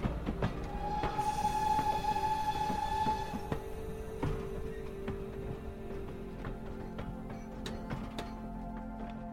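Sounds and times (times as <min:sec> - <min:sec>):
steam train pulling into a station: 0:00.0 - 0:06.5
metallic clanks and knocks of a slowing steam train: 0:03.6 - 0:09.2.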